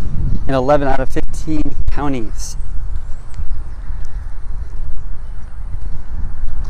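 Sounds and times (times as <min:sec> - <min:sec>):
wind buffeting a microphone outdoors: 0:00.0 - 0:06.6
speech: 0:00.5 - 0:02.6
faint footstep scuffs: 0:02.8 - 0:06.6.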